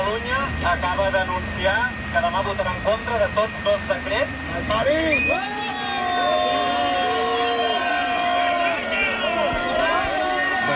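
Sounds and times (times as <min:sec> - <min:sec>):
speech: 0:00.6 - 0:05.7
large crowd booing and shouting angrily: 0:05.2 - 0:10.7.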